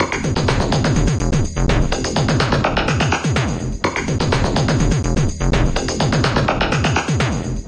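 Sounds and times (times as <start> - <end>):
125 bpm heavy thick sixteenth-note drum loop: 0.0 - 7.6.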